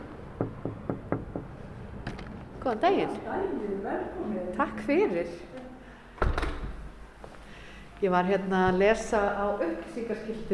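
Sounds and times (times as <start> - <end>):
knocking on a door: 0.4 - 1.6
speech: 2.6 - 5.6, 8.0 - 10.5.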